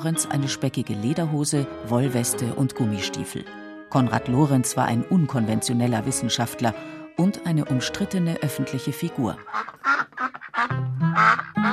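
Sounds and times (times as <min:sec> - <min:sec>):
speech: 0:00.0 - 0:10.1, 0:10.7 - 0:11.7
duck quacking: 0:09.4 - 0:11.7.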